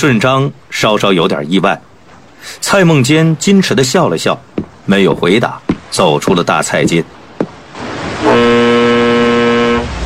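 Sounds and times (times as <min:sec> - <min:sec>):
speech: 0:00.0 - 0:07.2
steamship whistle blowing a long blast: 0:08.2 - 0:10.0.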